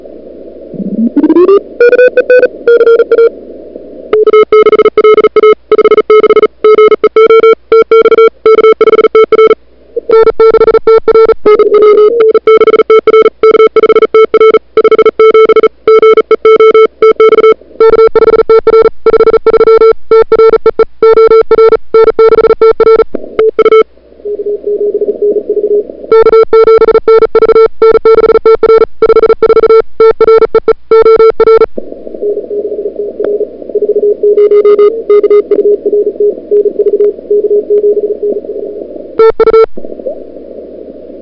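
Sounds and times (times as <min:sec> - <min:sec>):
CW sprint QSO Morse code signals on the same frequency: 0:00.8 - 0:03.3, 0:04.1 - 0:38.4, 0:39.2 - 0:39.7.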